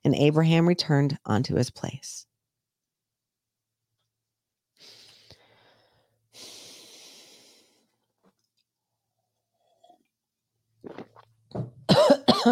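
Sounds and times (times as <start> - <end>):
speech: 0.1 - 2.3, 10.8 - 12.5
harsh breaths: 4.8 - 8.1
person coughing after something went down the wrong way: 11.9 - 12.5.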